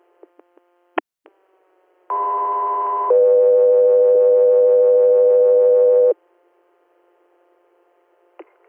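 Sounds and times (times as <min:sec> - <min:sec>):
two-tone radio dispatch page alerting an air medical unit: 0:02.1 - 0:06.2.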